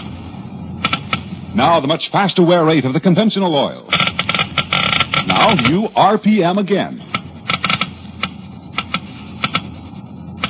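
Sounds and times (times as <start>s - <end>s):
faint steady hum: 0.0s - 10.4s
Geiger counter clicking: 0.8s - 1.4s, 3.9s - 5.8s, 7.1s - 9.8s
speech: 1.5s - 4.1s, 5.3s - 7.1s.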